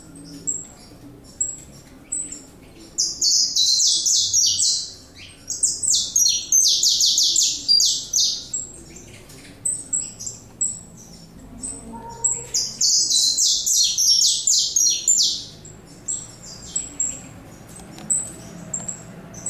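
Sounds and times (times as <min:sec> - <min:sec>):
saffron finch song of rapid ringing chirps in the Pantanal: 0:00.2 - 0:19.4.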